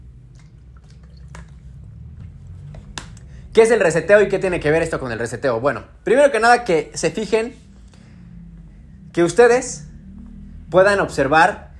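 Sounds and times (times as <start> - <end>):
person sipping water: 0.0 - 3.4
low steady hum: 0.0 - 11.7
speech: 3.6 - 7.6, 9.2 - 9.9, 10.7 - 11.7.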